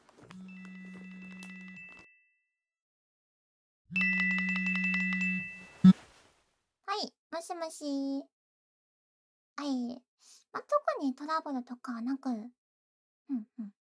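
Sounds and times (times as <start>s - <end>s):
phone ringtone ringing: 0.2s - 2.4s, 3.9s - 6.0s
speech: 7.4s - 8.3s, 9.6s - 12.6s, 13.3s - 13.8s.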